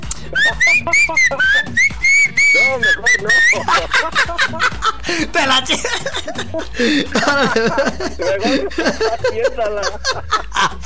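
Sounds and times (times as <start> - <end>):
low sound: 0.0 - 10.8
person whistling a tune: 0.1 - 3.9
laughter: 0.1 - 10.8
speech: 0.3 - 1.9, 2.6 - 10.8.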